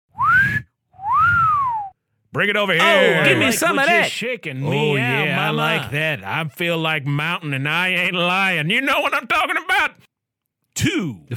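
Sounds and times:
rising bird-like mountain lion whistles: 0:00.1 - 0:02.0
speech: 0:02.3 - 0:10.0, 0:10.8 - 0:11.3
laughter: 0:02.8 - 0:06.9.

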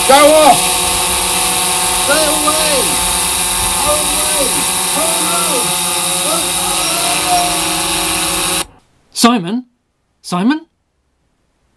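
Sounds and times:
large drone buzzing overhead: 0:00.0 - 0:08.8
speech: 0:00.1 - 0:00.7, 0:02.1 - 0:03.1, 0:03.8 - 0:07.8, 0:09.2 - 0:10.7
faint voices murmuring: 0:03.8 - 0:07.8.

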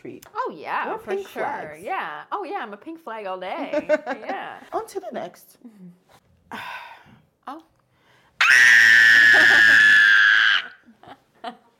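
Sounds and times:
speech: 0:00.0 - 0:05.9, 0:06.5 - 0:06.9, 0:07.5 - 0:07.7, 0:08.5 - 0:10.0
person screaming in horror: 0:08.4 - 0:10.8.

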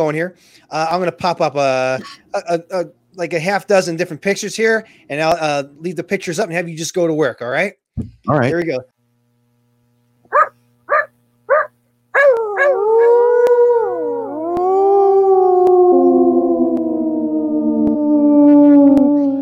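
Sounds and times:
speech: 0:00.0 - 0:08.9
person imitating a basset hound yelping and howling: 0:12.2 - 0:19.3.

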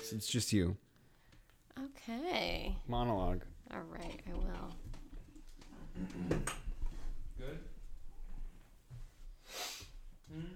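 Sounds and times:
speech: 0:00.1 - 0:00.9, 0:01.8 - 0:05.0, 0:06.0 - 0:06.6, 0:07.4 - 0:07.8, 0:10.3 - 0:10.5
person blowing nose: 0:09.4 - 0:10.0.

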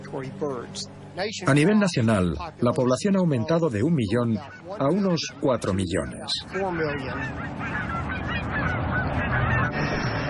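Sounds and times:
speech: 0:00.1 - 0:08.0
flock of resident Canada geese honking: 0:02.5 - 0:10.2.

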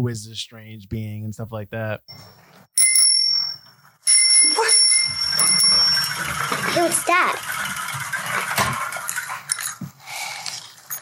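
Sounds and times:
speech: 0:00.0 - 0:02.5, 0:06.8 - 0:08.1
noise: 0:00.0 - 0:11.0
small bicycle bell ringing: 0:02.8 - 0:06.5.

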